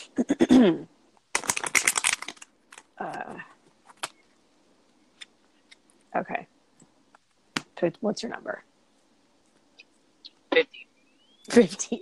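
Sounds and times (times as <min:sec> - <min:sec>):
speech: 0:00.2 - 0:00.9, 0:06.2 - 0:06.5, 0:07.8 - 0:08.7, 0:10.6 - 0:10.9, 0:11.5 - 0:12.0
deck of playing cards riffling: 0:01.3 - 0:02.9.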